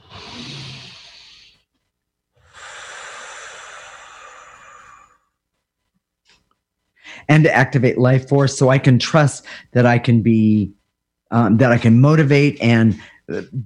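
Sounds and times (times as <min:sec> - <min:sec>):
person taking a deep breath: 0:00.0 - 0:01.7, 0:02.4 - 0:05.4, 0:07.0 - 0:07.3
speech: 0:07.3 - 0:13.6.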